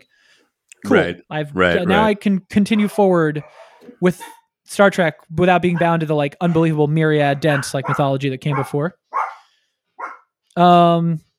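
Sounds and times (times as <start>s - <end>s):
speech: 0.8s - 9.2s, 10.6s - 11.3s
two dogs barking: 2.7s - 4.4s, 5.6s - 10.3s.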